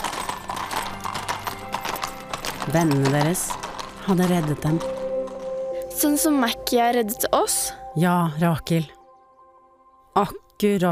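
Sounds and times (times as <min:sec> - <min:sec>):
horses' hooves clip-clopping as riders leave a city: 0:00.0 - 0:06.5
speech: 0:02.7 - 0:05.0, 0:06.0 - 0:09.0, 0:10.2 - 0:10.9.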